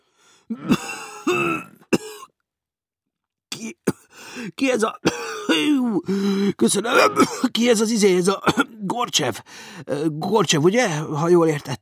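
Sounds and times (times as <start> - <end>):
speech: 0.5 - 1.7, 4.6 - 11.7
person coughing and sputtering after choking on wine: 0.5 - 2.3, 3.6 - 4.1, 5.0 - 6.1, 6.8 - 7.6, 8.4 - 8.8
person strained throat-clearing: 0.5 - 2.3, 3.6 - 4.1, 5.0 - 6.0, 6.8 - 7.6.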